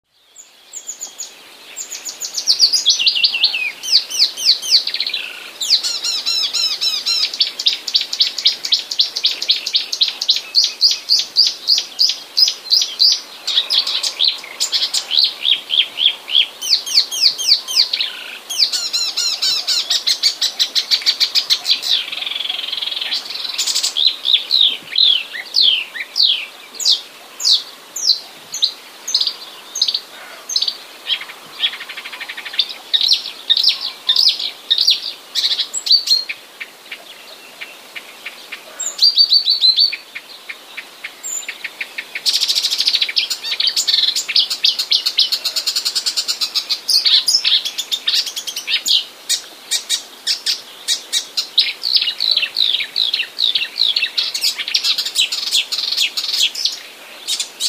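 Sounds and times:
swallow: 0.1 - 57.6.

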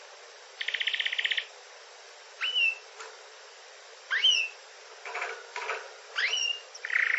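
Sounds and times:
canary song phrases: 0.0 - 1.6, 2.3 - 3.0, 4.0 - 7.1.

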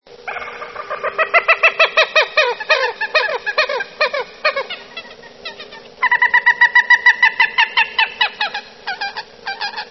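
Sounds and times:
moorhens: 0.2 - 9.8.

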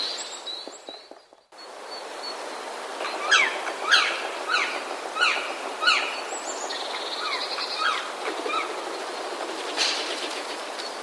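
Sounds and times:
Dryocopus martius black woodpecker calls: 0.0 - 11.0.

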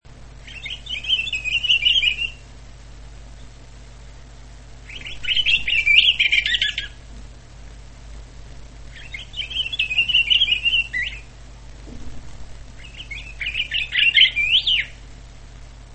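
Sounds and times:
pine grosbeak giving warbled twittering phrases: 0.4 - 2.4, 4.8 - 7.0, 8.9 - 11.4, 12.8 - 15.0.

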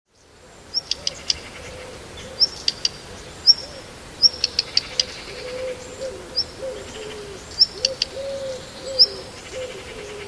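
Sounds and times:
black redstart repeating high-pitched chirps: 0.7 - 10.2.

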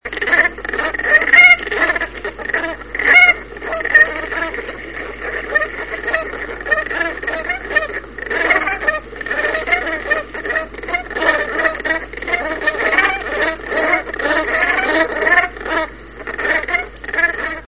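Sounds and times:
barnacle geese: 0.0 - 17.6.

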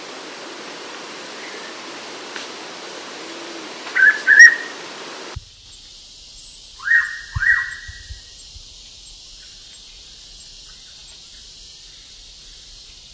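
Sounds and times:
Hooded pitta Pitta sordida whistled call: 3.9 - 4.8, 6.4 - 8.6.

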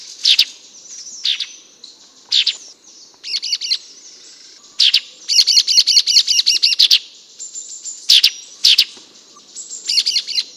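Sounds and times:
Melanochlora sultanea sultan tit giving harsh chattering calls: 0.1 - 0.6, 1.2 - 1.6, 2.3 - 7.1, 8.1 - 10.5.

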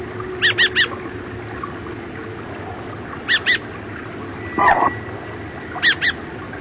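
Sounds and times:
Turdus naumanni thrush calling: 0.4 - 1.0, 3.3 - 3.7, 4.5 - 6.3.

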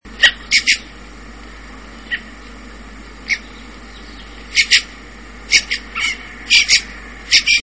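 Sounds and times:
redwing Turdus iliacus calls: 0.2 - 1.0, 2.0 - 2.6, 3.2 - 7.6.

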